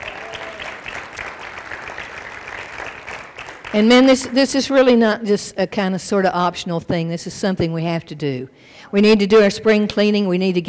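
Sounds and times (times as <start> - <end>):
audience clapping as an offering: 0.0 - 4.6
speech: 3.7 - 10.6.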